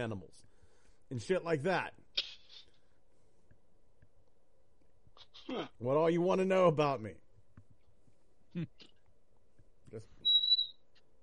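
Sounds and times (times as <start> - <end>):
speech: 0.0 - 0.5, 1.1 - 2.3, 5.5 - 7.2, 8.5 - 8.9, 9.9 - 10.2
door giving a short high-pitched squeak: 10.2 - 10.8.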